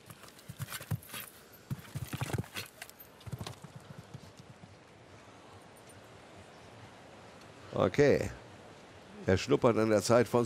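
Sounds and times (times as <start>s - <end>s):
horse galloping in a show jumping round: 0.0s - 5.0s
speech: 7.8s - 8.4s, 9.3s - 10.4s.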